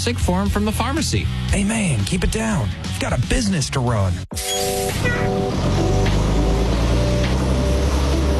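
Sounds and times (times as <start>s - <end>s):
speech: 0.0s - 5.4s
bus engine droning while driving: 4.6s - 8.3s.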